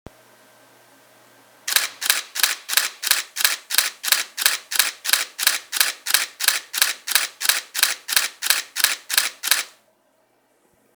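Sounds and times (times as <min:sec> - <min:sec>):
Nikon D750 camera shutter quiet burst: 0:01.7 - 0:09.8.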